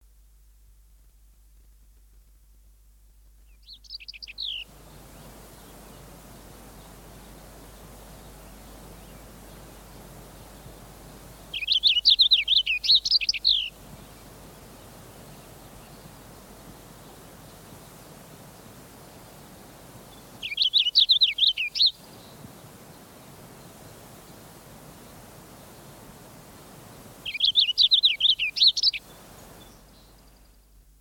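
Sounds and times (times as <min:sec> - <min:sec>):
purple finch and songbirds singing: 0:03.4 - 0:30.8.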